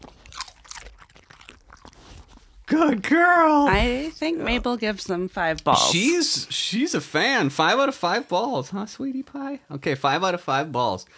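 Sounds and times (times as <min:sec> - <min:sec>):
pet chewing crunchy smoked salmon against a microphone: 0:00.0 - 0:06.0
speech: 0:02.7 - 0:11.1.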